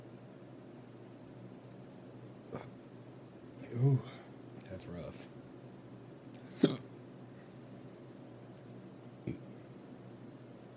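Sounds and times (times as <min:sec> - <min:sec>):
faint steady hum: 0:00.0 - 0:10.7
hiccups after tasting whiskey: 0:02.5 - 0:02.8, 0:06.5 - 0:06.9, 0:09.2 - 0:09.5
speech: 0:04.8 - 0:05.4.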